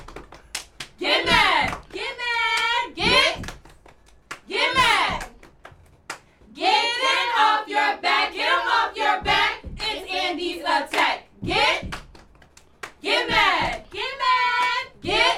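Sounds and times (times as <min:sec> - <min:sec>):
sharp hand claps keeping the beat: 0:00.0 - 0:06.5, 0:09.2 - 0:15.3
young cheerleaders shouting a rhythmic cheer: 0:01.0 - 0:03.4, 0:04.5 - 0:05.4, 0:06.6 - 0:11.8, 0:13.0 - 0:15.3.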